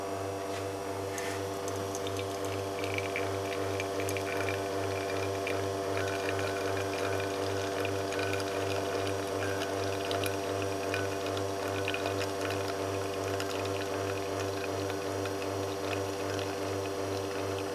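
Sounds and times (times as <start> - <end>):
two-group espresso machine pump humming while running coffee through the portafilter: 0.1 - 17.7.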